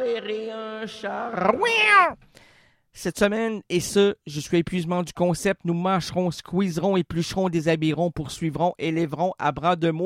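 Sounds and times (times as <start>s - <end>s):
speech: 0.1s - 10.0s
cat meowing: 1.5s - 2.2s.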